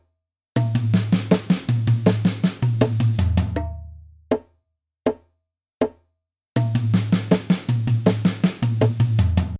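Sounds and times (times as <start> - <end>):
level 2 drum fills at 80 bpm: 0.6 - 3.9, 6.6 - 9.5.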